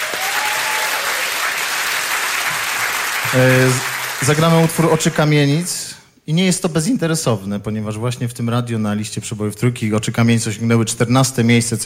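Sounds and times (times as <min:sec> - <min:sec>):
studio audience applause at a radio studio session: 0:00.0 - 0:05.7
speech: 0:03.3 - 0:11.8.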